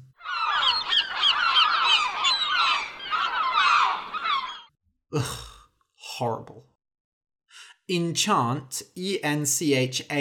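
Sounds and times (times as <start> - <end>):
flock of seagulls squawking and crying: 0.0 - 4.7
speech: 5.1 - 5.5, 6.2 - 6.7, 7.9 - 10.2.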